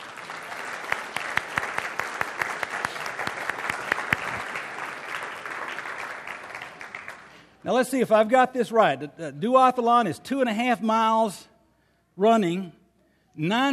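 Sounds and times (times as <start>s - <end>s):
audience applause: 0.0s - 7.5s
speech: 7.6s - 11.5s, 12.2s - 12.8s, 13.4s - 13.7s.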